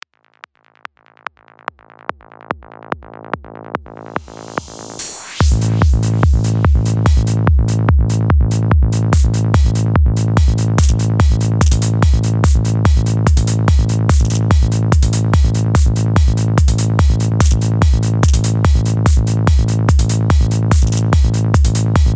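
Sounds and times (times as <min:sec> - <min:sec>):
bassline: 0:00.0 - 0:22.1.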